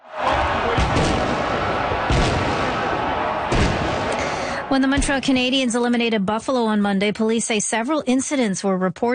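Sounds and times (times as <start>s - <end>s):
steady roar of outdoor noise: 0.0s - 5.3s
fireworks exploding: 0.7s - 5.7s
speech: 4.7s - 9.1s.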